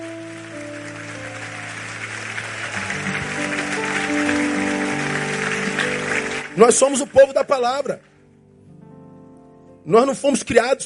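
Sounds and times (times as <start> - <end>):
large crowd applauding: 0.0 - 8.2
sustained humming musical tone: 0.0 - 9.2
speech: 6.6 - 8.1, 9.9 - 10.8.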